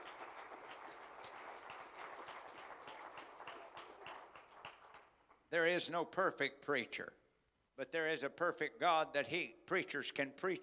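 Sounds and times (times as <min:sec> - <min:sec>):
audience applauding: 0:00.0 - 0:05.3
speech: 0:05.5 - 0:07.2, 0:07.8 - 0:10.6.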